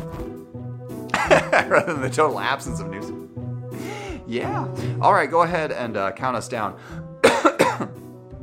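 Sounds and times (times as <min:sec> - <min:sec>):
harsh rasping coughs into a microphone: 0:01.1 - 0:01.9, 0:07.2 - 0:08.0
laughter: 0:01.1 - 0:02.2
speech: 0:01.5 - 0:03.3, 0:04.3 - 0:07.1.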